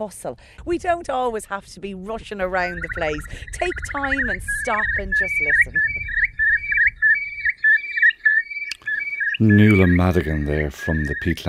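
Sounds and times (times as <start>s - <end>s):
speech: 0.0s - 6.0s, 9.4s - 11.4s
Eurasian curlew calling on a bog: 2.2s - 11.4s.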